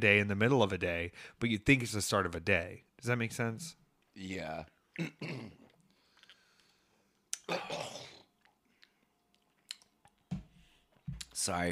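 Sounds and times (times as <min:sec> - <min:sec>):
speech: 0:00.0 - 0:05.6, 0:11.4 - 0:11.6
person clearing throat: 0:05.0 - 0:05.7, 0:07.4 - 0:08.3
person coughing: 0:05.0 - 0:05.7, 0:07.4 - 0:08.3.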